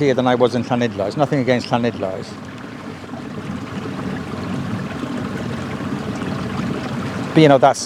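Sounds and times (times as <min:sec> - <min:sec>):
speech: 0:00.0 - 0:02.6, 0:07.4 - 0:07.8
river water flowing: 0:00.0 - 0:07.8.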